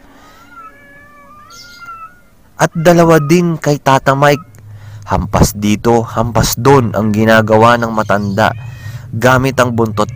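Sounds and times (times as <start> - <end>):
cats yowling aggressively: 0.0 - 4.7, 7.1 - 10.1
steady low hum: 0.0 - 10.1
speech: 2.6 - 4.5, 5.1 - 10.1.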